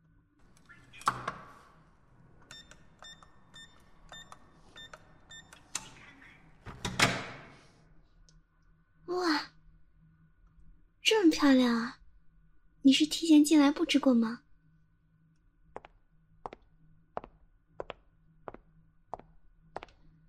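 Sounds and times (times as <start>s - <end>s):
electronic beeps of a door keypad: 2.4s - 6.0s
door code lock releasing with a click and clunk: 6.7s - 7.6s
speech: 11.4s - 12.0s, 12.8s - 14.4s.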